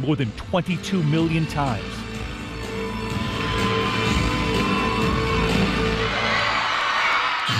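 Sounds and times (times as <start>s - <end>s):
speech: 0.0s - 2.0s
busy arena noise: 0.0s - 7.5s
steady tonal backdrop: 1.7s - 6.4s
teammates cheering and whooping: 3.2s - 7.5s.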